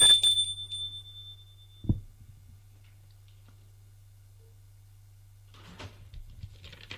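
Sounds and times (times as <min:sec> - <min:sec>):
doorbell ringing with a bright tone: 0:00.0 - 0:02.0
low steady hum: 0:00.0 - 0:06.9.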